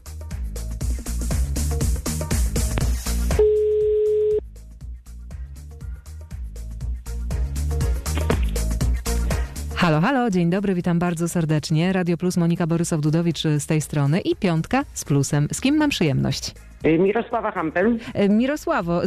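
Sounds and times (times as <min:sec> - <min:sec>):
continuous rhythmic music: 0:00.0 - 0:03.4, 0:04.4 - 0:19.0
telephone ringback tone: 0:03.4 - 0:04.4
speech: 0:10.0 - 0:19.0.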